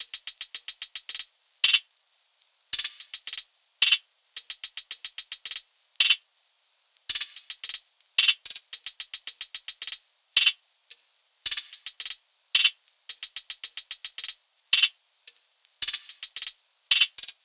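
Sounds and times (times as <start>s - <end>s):
hi-hat drum loop: 0.0s - 1.8s, 2.7s - 6.2s, 7.1s - 17.4s.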